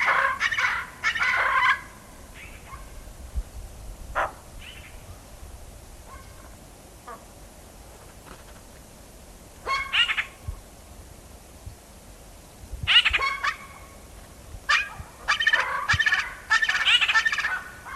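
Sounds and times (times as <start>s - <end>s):
Tibetan eared pheasant calling in harsh raucous bursts: 0.0s - 2.9s, 4.2s - 5.0s, 9.6s - 10.4s, 12.9s - 14.0s, 14.7s - 17.9s.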